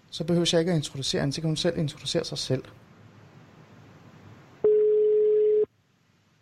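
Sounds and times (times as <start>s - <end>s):
faint hiss: 0.0s - 6.3s
speech: 0.1s - 2.8s
telephone tone while dialing out: 4.6s - 5.7s.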